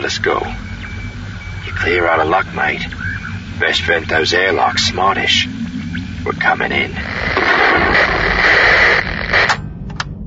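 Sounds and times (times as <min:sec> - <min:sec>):
speech: 0:00.0 - 0:00.8, 0:01.7 - 0:03.0, 0:03.6 - 0:05.6, 0:06.2 - 0:08.2
loud harsh burst of hissing radio static: 0:00.0 - 0:09.6.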